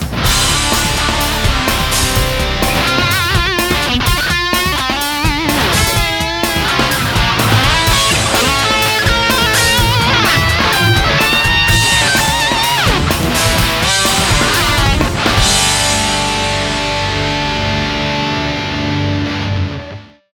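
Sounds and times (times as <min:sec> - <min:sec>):
guitar playing: 0:00.1 - 0:20.3.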